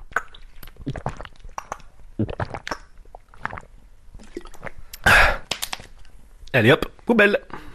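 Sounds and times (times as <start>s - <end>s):
person gulping water from a plastic bottle: 0.0s - 6.2s
speech: 6.5s - 7.6s.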